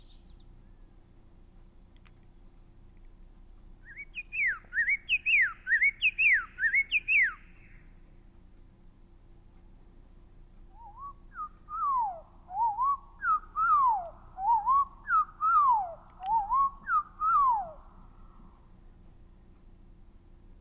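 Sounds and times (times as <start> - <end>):
Common Yellowthroat song: 0.0 - 1.1, 3.8 - 8.0, 10.6 - 18.7
Common Yellowthroat song slowed down: 0.0 - 20.5.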